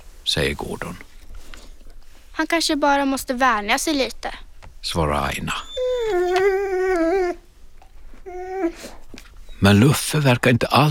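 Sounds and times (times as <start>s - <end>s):
speech: 0.3s - 1.1s, 2.4s - 6.4s, 9.6s - 10.8s
dog howling loudly: 5.5s - 7.5s, 8.2s - 9.7s.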